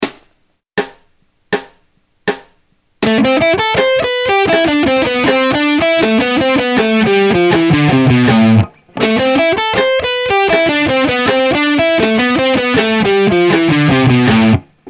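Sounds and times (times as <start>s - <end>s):
rock guitar solo lines in quadruplets and triplets: 3.0s - 14.8s.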